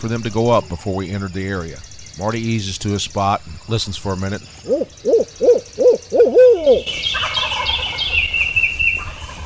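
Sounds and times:
speech: 0.0s - 5.2s, 6.6s - 7.4s
turkey hunter's voice imitating owl hoots at dusk: 4.6s - 6.9s
rattling gobble-like bird call: 4.7s - 9.4s.

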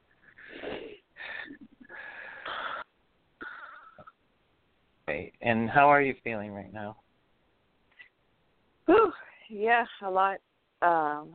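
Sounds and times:
person breathing deeply in and out: 0.3s - 4.1s
speech: 5.2s - 7.0s, 9.5s - 11.3s.

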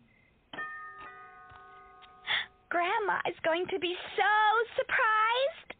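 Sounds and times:
house doorbell chime rung by a trick-or-treater: 0.6s - 2.3s
speech: 2.9s - 5.7s.

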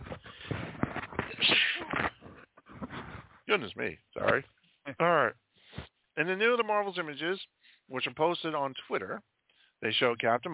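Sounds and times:
person sneezing: 1.3s - 2.1s
speech: 3.5s - 5.4s, 6.2s - 10.5s.

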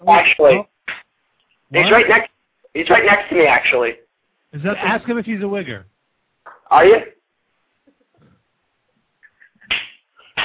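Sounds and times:
speech: 0.0s - 0.7s, 1.7s - 5.9s, 6.7s - 7.2s
sharp slaps: 0.8s - 1.1s, 9.6s - 10.4s.

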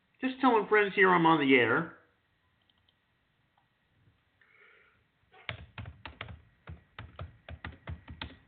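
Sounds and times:
speech: 0.2s - 2.0s
typing on a computer keyboard: 5.5s - 8.4s.

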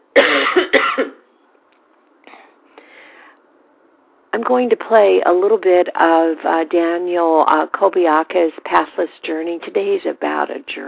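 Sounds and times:
loud harsh breathy coughs: 0.1s - 1.2s
speech: 4.5s - 10.8s.

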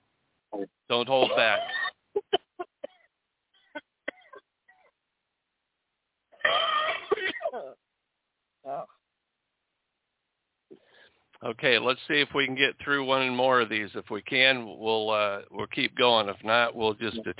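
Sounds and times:
speech: 0.6s - 2.3s, 11.4s - 17.3s
throat clearing: 1.2s - 1.9s
person coughing: 1.2s - 3.0s, 6.4s - 7.7s.

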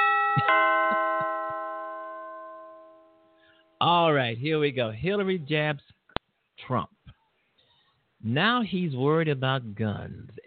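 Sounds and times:
doorbell ding-dong chime: 0.0s - 3.7s
speech: 0.4s - 0.7s, 3.8s - 6.0s, 6.6s - 6.9s, 8.2s - 10.4s.

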